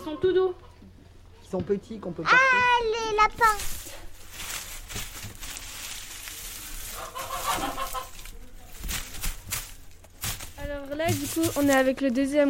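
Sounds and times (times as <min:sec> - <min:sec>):
chickens clucking: 0:00.0 - 0:01.3, 0:03.4 - 0:11.9
steady noisy outdoor noise: 0:00.0 - 0:12.4
speech: 0:00.1 - 0:00.9, 0:01.5 - 0:03.8, 0:10.7 - 0:12.4.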